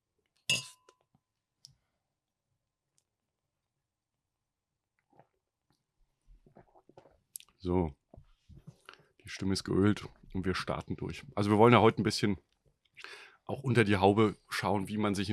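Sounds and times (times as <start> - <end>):
wine glasses clinking in a toast: 0.5 - 0.9
speech: 7.6 - 8.0, 9.3 - 15.3.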